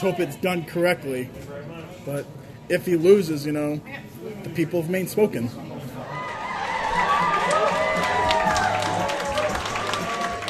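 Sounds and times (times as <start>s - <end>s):
speech: 0.0s - 5.7s
crowd of more than 150 people cheering at a political campaign event in Lewiston, Maine: 6.0s - 10.4s
many overlapping excited voices: 6.0s - 10.4s
people clapping: 6.2s - 10.4s.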